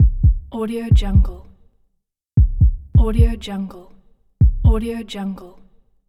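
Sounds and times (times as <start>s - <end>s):
heartbeat: 0.0s - 1.4s, 2.4s - 3.4s, 4.4s - 4.9s.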